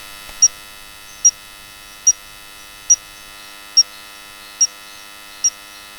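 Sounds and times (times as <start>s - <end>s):
Stumpffia spandei frog calling: 0.4s - 1.4s, 2.0s - 5.6s.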